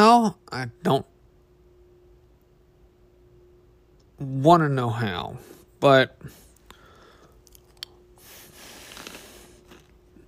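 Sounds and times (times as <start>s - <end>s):
speech: 0.0s - 1.1s, 4.2s - 6.4s
faint steady hum: 0.0s - 10.2s
chewing popcorn: 7.3s - 8.0s, 8.7s - 10.2s.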